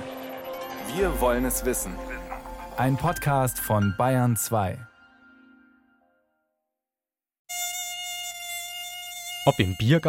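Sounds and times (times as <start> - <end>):
musical tone: 0.0 - 6.3
speech: 1.0 - 2.2, 2.8 - 4.9, 9.5 - 10.0
mosquito buzzing: 7.5 - 10.0.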